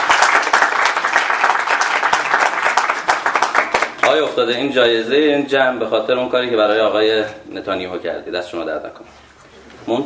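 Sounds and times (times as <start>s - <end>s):
audience applauding and clapping: 0.0s - 4.3s
speech: 4.1s - 10.0s.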